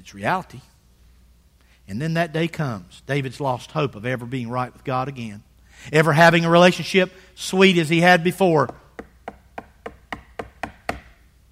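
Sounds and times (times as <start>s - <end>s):
speech: 0.0s - 0.7s, 1.9s - 8.8s
knocking on a door: 8.9s - 11.1s.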